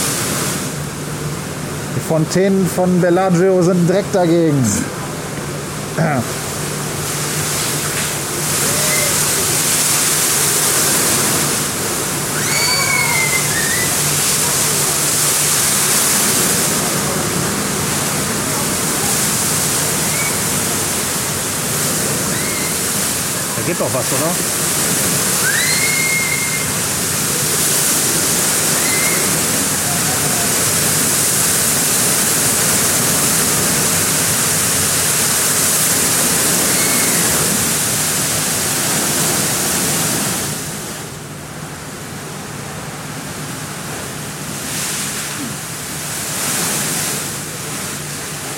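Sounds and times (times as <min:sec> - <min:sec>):
loud continuous hiss of white noise: 0:00.0 - 0:48.5
speech: 0:02.0 - 0:05.0, 0:06.0 - 0:06.4, 0:23.8 - 0:24.6.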